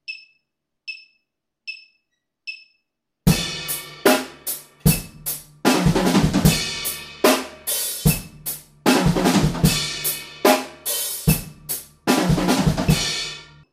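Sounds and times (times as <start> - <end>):
drum break in triplet eighth notes: 3.3 - 13.6.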